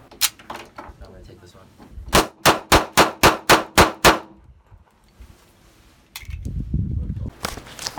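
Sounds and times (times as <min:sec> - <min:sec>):
gunshots from a gun fired at an open shooting range in Palm Springs, California: 0:02.2 - 0:04.3.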